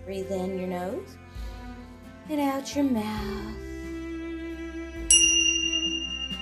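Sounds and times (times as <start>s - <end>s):
speech: 0.1s - 1.2s, 2.3s - 3.7s
dragon tingsha bells struck and ringing: 5.1s - 6.4s.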